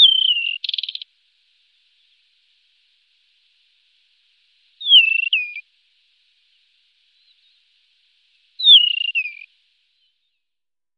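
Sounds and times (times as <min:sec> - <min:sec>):
Desert wheatear plaintive falling whistle: 0:00.0 - 0:01.0, 0:04.8 - 0:05.6, 0:08.6 - 0:10.4.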